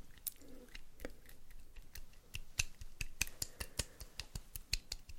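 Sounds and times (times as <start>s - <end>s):
sharp clicks and taps of makeup: 1.0s - 5.1s.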